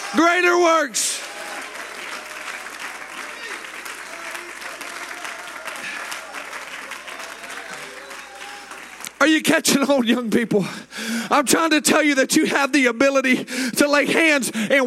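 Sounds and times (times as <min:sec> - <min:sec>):
large crowd clapping in a reverberant room: 0:00.0 - 0:09.6
speech: 0:00.1 - 0:01.4, 0:09.2 - 0:14.8.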